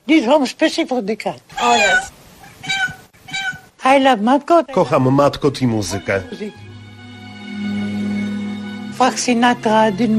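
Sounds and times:
speech: 0.1s - 2.8s, 3.8s - 6.6s, 9.0s - 10.1s
cats meowing: 1.5s - 3.8s.

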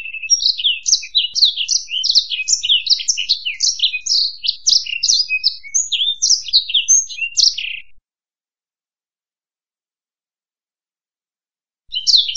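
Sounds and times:
bird song of quick bright chirps and trills: 0.0s - 8.0s, 11.9s - 12.3s.

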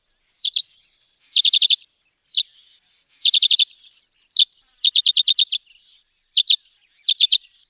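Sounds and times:
chestnut sparrow Passer eminibey chattering calls: 0.3s - 7.6s.

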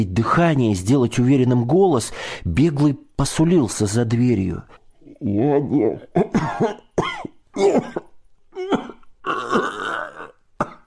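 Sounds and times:
speech: 0.0s - 8.1s
man coughing wheezing and choking: 6.0s - 10.8s.

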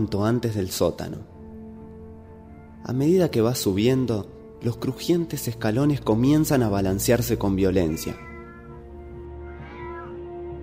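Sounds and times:
speech: 0.0s - 1.4s, 2.8s - 8.3s
faint cat meow from a basement floor: 7.7s - 10.4s.

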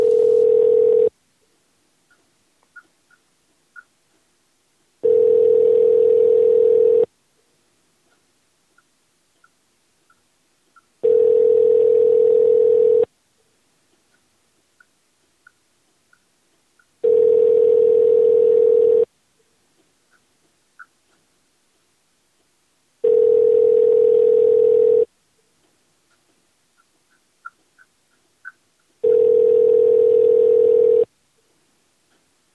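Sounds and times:
telephone ringback tone from an outgoing call: 0.0s - 1.1s, 5.0s - 7.1s, 11.0s - 13.1s, 17.0s - 19.1s, 23.0s - 25.1s, 29.0s - 31.1s
faint ticks: 1.4s - 4.3s, 8.0s - 11.0s, 13.4s - 17.4s, 19.4s - 21.3s, 25.4s - 29.3s.

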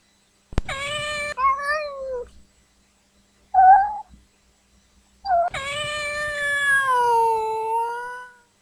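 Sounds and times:
scared cat meowing: 0.7s - 2.3s, 3.6s - 4.1s, 5.3s - 8.4s.

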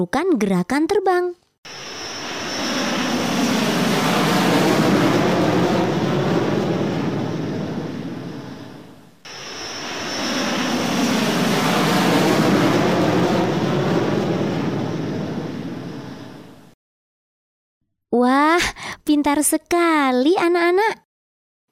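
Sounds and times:
speech: 0.0s - 1.8s, 19.2s - 21.0s
airplane roaring past: 1.7s - 16.8s.

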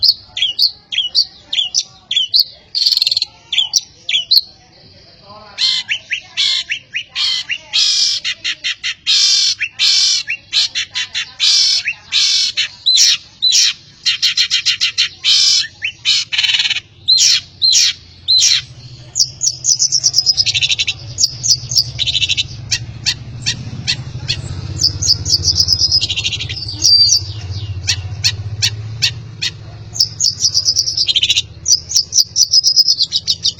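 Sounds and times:
long-tailed shrike singing: 0.0s - 4.7s, 5.3s - 33.5s
constant low hum: 0.0s - 33.5s.

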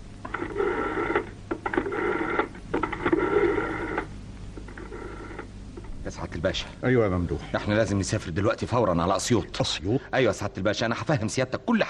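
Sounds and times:
buzzy electronic telephone tones as a call is placed: 0.0s - 5.9s
speech: 6.2s - 11.8s.

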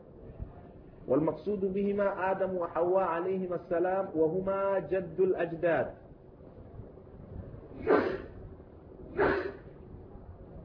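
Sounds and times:
speech: 1.1s - 6.0s
breathy sneezes: 7.8s - 8.4s, 9.1s - 9.7s.

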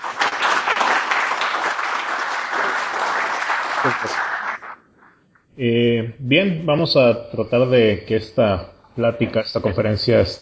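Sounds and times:
audience applause at a conference talk on free software communities: 0.0s - 4.8s
speech: 3.8s - 4.3s, 5.6s - 10.4s.

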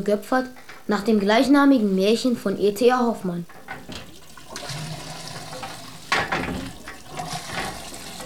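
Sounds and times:
speech: 0.0s - 3.6s
flowing water poured under a pump: 3.6s - 8.2s.

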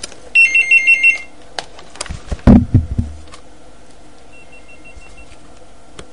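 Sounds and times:
telephone ringing with an incoming call in high electronic beeps: 0.4s - 1.3s, 4.4s - 5.3s.

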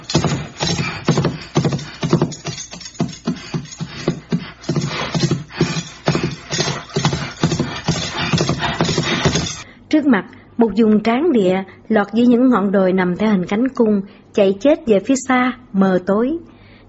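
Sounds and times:
horse hooves clip-clopping climbing a trail over a hill at night: 0.0s - 9.6s
speech: 10.0s - 16.8s.

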